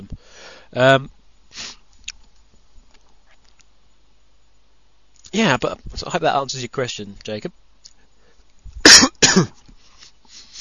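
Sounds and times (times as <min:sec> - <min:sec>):
speech: 0:00.7 - 0:01.8, 0:05.4 - 0:07.6, 0:09.4 - 0:09.6
man with a phlegmy congested chest coughing: 0:08.8 - 0:09.6.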